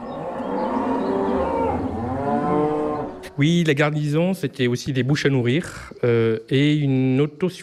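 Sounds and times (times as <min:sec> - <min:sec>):
cows mooing: 0:00.0 - 0:03.4
speech: 0:03.4 - 0:07.6.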